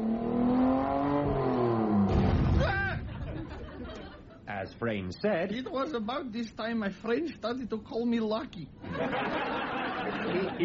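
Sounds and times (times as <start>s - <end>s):
car engine revving and accelerating: 0.0s - 2.4s
laughter: 2.7s - 4.5s, 8.8s - 10.6s
speech: 4.8s - 9.6s, 10.2s - 10.6s.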